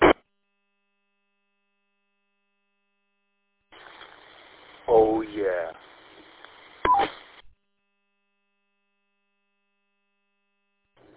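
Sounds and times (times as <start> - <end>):
crackly narrowband CB radio voice transmission: 0.0 - 0.2, 3.8 - 7.4.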